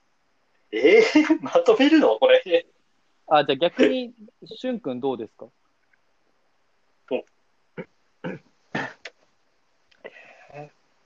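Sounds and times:
speech: 0.7s - 2.7s, 3.3s - 5.6s, 7.1s - 7.9s, 10.5s - 10.8s
person clearing throat: 7.8s - 9.1s.

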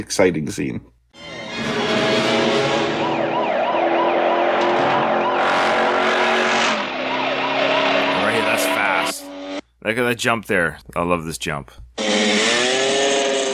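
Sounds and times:
speech: 0.0s - 0.9s, 9.8s - 11.8s
police car engine roaring: 1.2s - 9.6s, 12.0s - 13.5s
police car tires squealing: 1.2s - 9.6s, 12.0s - 13.5s
police car siren wailing: 1.3s - 9.4s.

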